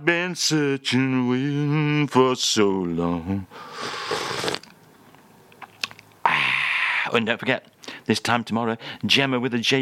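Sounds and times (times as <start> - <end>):
speech: 0.0 - 4.6, 7.1 - 9.7
slurp of tea from a china cup: 3.8 - 4.7.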